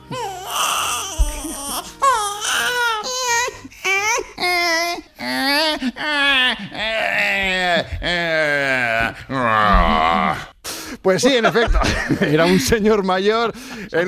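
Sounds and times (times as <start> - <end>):
older man imitating a crying baby with wailing sobs: 0.0 - 10.6
speech: 11.0 - 14.0
laughter: 11.2 - 12.8.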